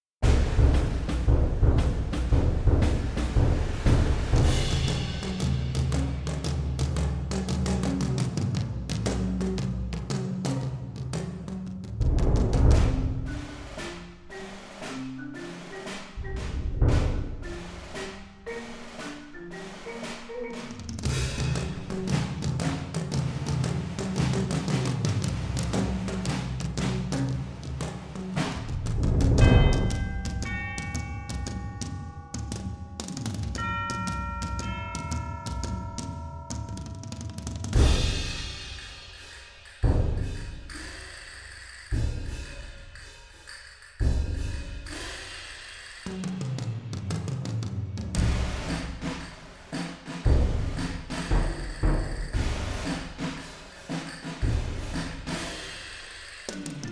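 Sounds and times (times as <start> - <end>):
percussion cue: 0.2 - 47.6, 48.2 - 56.9.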